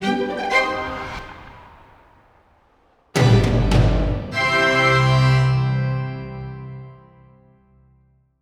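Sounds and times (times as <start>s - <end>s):
outro music: 0.0s - 1.9s, 3.2s - 7.6s.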